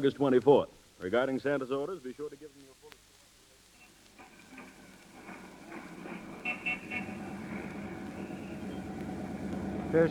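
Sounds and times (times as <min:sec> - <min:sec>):
speech: 0:00.0 - 0:02.8
street traffic rumbling heard from the top deck of a bus: 0:03.8 - 0:10.0
bus engine and road noise: 0:04.5 - 0:10.0
car horn toots: 0:06.4 - 0:08.8.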